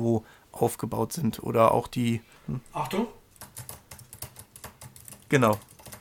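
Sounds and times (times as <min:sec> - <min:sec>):
speech: 0:00.0 - 0:03.2, 0:05.3 - 0:05.7
fingers typing on a low-profile chiclet-style Mac keyboard: 0:03.3 - 0:05.9.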